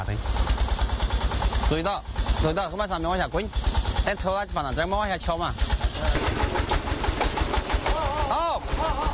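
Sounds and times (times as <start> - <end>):
tractor diesel engine idling: 0.0 - 9.1
speech: 1.7 - 6.9
laughter: 7.6 - 9.1.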